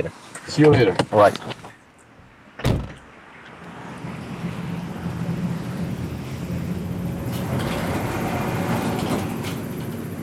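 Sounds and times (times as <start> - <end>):
speech: 0.0 - 1.6
sharp thud: 2.6 - 3.0
tram number 1 in Tallinn rumbling along rails: 3.8 - 10.2.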